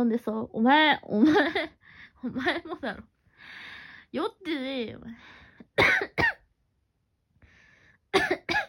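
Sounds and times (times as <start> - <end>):
speech: 0.0 - 6.3
sharp harsh coughing: 5.8 - 6.5, 8.1 - 8.6.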